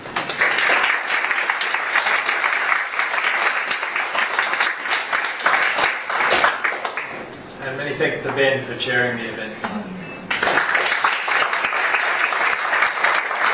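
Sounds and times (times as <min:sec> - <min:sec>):
audience applause for speakers: 0:00.0 - 0:07.2, 0:10.3 - 0:13.5
speech: 0:08.0 - 0:09.9.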